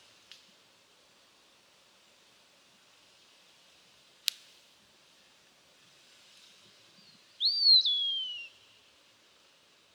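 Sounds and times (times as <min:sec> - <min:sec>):
Eastern Wood Pewee Contopus virens whistling: 0:07.4 - 0:08.6.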